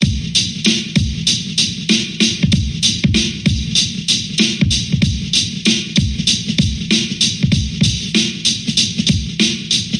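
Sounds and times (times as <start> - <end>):
bright drum loop breakbeat: 0.0 - 9.9.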